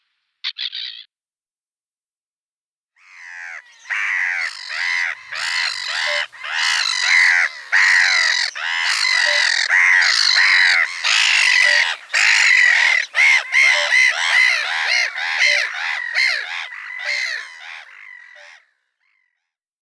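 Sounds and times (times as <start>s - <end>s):
black-headed gull: 3.0s - 18.7s.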